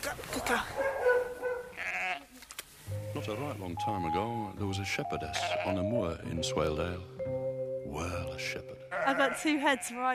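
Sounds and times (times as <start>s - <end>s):
speech: 0.1s - 0.8s, 3.3s - 10.1s
sheep bleating during lambing: 1.7s - 2.4s, 5.3s - 5.9s, 8.9s - 10.1s.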